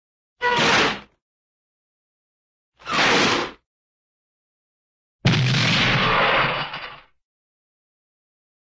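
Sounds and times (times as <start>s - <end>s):
cartoon screechy crash: 0.4s - 1.1s, 2.8s - 3.6s, 5.5s - 7.0s.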